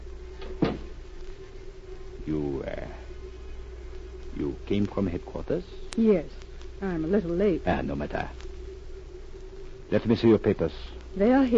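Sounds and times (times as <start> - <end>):
faint steady hum: 0.0 - 11.5
door shutting with a solid thump: 0.4 - 1.0
speech: 2.3 - 3.0, 4.4 - 8.5, 9.9 - 11.5.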